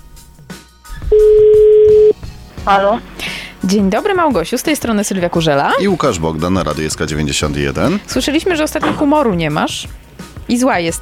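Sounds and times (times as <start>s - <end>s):
loud steady single-pitch telephone tone: 1.1s - 2.2s
speech: 2.6s - 10.9s.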